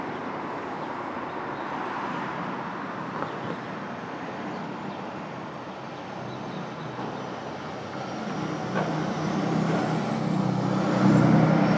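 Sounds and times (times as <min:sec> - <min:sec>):
cars passing: 0:00.0 - 0:11.7
street traffic at dawn: 0:00.0 - 0:11.7
heavier vehicle engine rumbling: 0:05.2 - 0:11.7.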